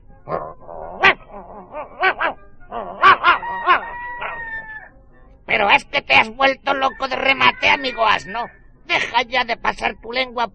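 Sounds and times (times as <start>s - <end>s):
speech: 0.2s - 0.6s, 5.6s - 10.5s
dog whining: 0.3s - 4.6s
dog giving loud laugh-like yipping barks: 0.8s - 4.7s.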